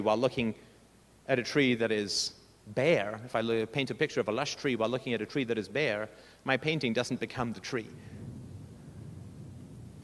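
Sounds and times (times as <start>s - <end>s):
speech: 0.0s - 0.7s, 1.3s - 8.2s
low steady rumble of thunder: 7.9s - 10.0s.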